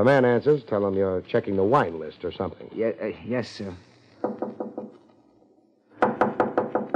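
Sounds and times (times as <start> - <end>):
speech: 0.0 - 3.9
knocking on a door: 4.2 - 5.0, 6.0 - 6.9.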